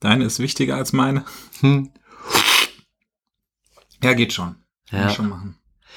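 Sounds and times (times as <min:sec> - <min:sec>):
speech: 0:00.0 - 0:02.4, 0:04.0 - 0:05.9
slurping coffee from a round wide tasting spoon during a coffee tasting: 0:02.2 - 0:02.8.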